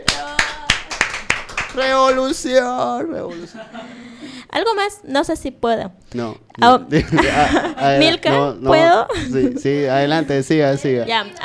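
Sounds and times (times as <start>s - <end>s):
handclaps: 0.0s - 2.3s
speech: 1.8s - 11.4s
laughter: 3.2s - 4.2s, 6.9s - 8.4s.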